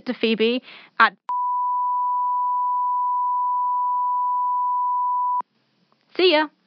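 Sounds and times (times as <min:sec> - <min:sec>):
speech: 0:00.0 - 0:01.3, 0:06.2 - 0:06.6
censor bleep tone over spoken address in a voicemail: 0:01.3 - 0:05.4.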